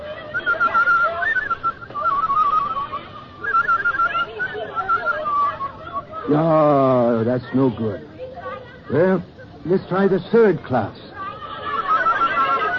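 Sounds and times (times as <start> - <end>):
person whistling a wavering tune: 0.3 - 5.8
speech: 6.3 - 8.1, 8.9 - 11.0
laughter: 11.1 - 12.7.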